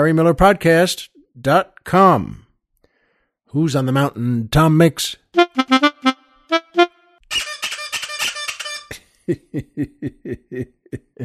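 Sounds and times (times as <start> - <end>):
speech: 0.0 - 2.4, 3.5 - 5.7, 9.3 - 11.2
squeezed rubber bird toy squeaking: 7.3 - 9.0
laughter: 9.3 - 11.2.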